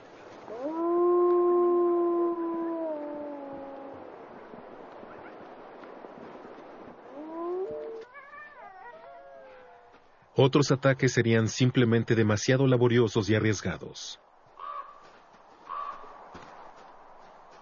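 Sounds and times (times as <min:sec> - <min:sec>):
wolves howling: 0:00.5 - 0:04.2, 0:07.1 - 0:10.1
speech: 0:10.4 - 0:14.2.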